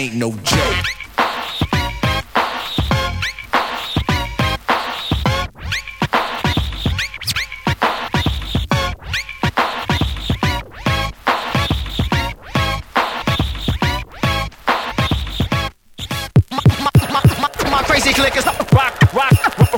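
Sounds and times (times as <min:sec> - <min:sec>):
speech: 0:00.0 - 0:01.0
turntable scratching: 0:00.5 - 0:19.7.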